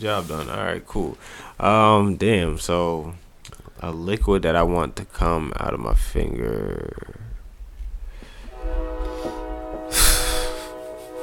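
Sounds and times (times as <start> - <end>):
speech: 0.0 - 3.2, 3.8 - 7.2
train passing outside with a low rumble: 8.1 - 11.2
brief hissing burst: 9.1 - 10.8.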